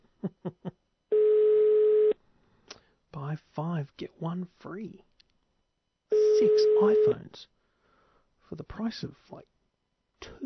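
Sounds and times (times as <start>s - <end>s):
foreign-style telephone ringback tone down a phone line: 1.1s - 2.2s, 6.1s - 7.2s
speech: 3.3s - 5.1s, 6.4s - 7.6s, 8.5s - 9.5s, 10.2s - 10.4s.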